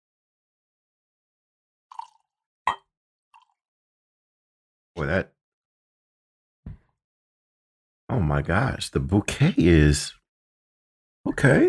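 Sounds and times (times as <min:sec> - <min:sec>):
high-rye whiskey poured into a glass: 0:01.9 - 0:02.8
speech: 0:05.0 - 0:05.4, 0:08.1 - 0:10.2, 0:11.2 - 0:11.6.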